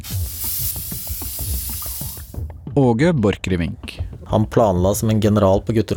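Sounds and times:
aerosol spray paint can spraying a graffiti tag: 0.0 - 2.4
soft low rhythmic thumps: 0.3 - 5.9
speech: 2.8 - 5.9.

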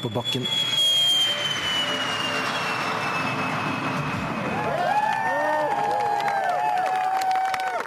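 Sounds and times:
speech: 0.0 - 0.6
wavering high tones: 0.0 - 4.7
rocket engine roaring in flight: 0.0 - 7.4.

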